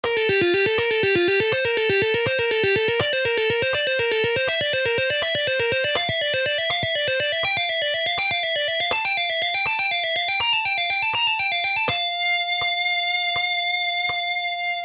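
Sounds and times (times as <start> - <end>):
tapping exercise: 0.0 - 14.3.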